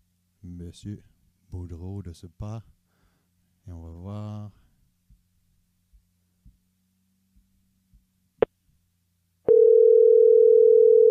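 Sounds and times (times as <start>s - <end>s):
speech: 0.6s - 2.8s, 3.7s - 4.6s
steady mid-pitched telephone tone on an outgoing call: 9.5s - 11.1s.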